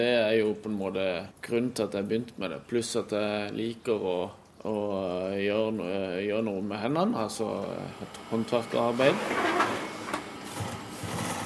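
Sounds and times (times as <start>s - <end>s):
speech: 0.0s - 9.9s
sailmaker's sewing machine stitching sailcloth: 9.0s - 11.4s.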